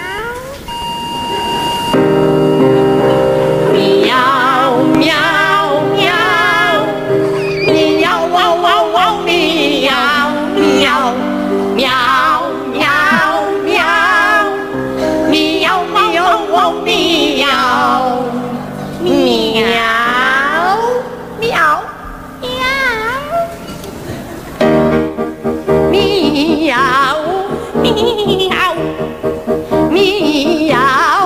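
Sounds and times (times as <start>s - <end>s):
musical backing: 0.0s - 31.2s
two singers meowing a comic cat duet: 7.2s - 8.2s.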